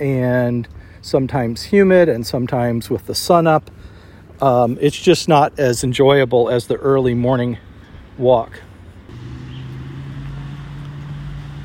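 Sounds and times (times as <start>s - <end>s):
speech: 0.0s - 8.7s
campus transit bus engine rumbling: 7.7s - 11.6s.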